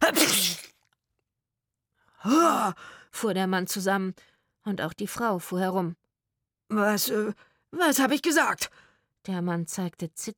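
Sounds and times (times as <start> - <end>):
stifled sneeze: 0.0 - 0.8
speech: 2.2 - 6.0, 6.7 - 10.3.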